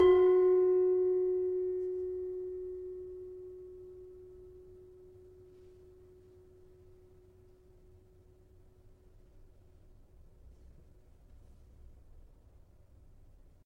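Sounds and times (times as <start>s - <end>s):
gravity harps tuned to F sharp: 0.0s - 6.3s.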